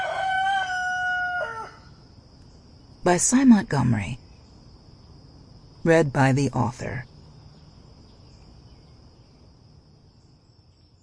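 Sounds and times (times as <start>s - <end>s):
rooster crowing: 0.0s - 2.0s
speech: 3.0s - 4.2s, 5.8s - 7.1s.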